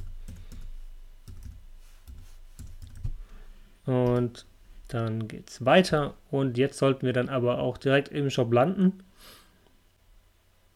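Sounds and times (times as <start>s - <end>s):
typing on a computer keyboard: 1.3s - 3.1s
speech: 3.9s - 9.4s.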